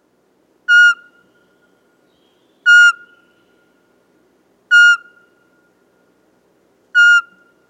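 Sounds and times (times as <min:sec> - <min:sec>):
Eurasian pygmy owl singing soft clear single whistles: 0:00.7 - 0:01.2, 0:02.6 - 0:03.4, 0:04.7 - 0:05.3, 0:07.0 - 0:07.6.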